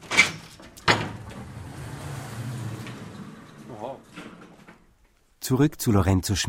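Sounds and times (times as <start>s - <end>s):
garage door clanking and rolling upward with mechanical rumble: 0.0s - 5.2s
speech: 5.5s - 6.4s.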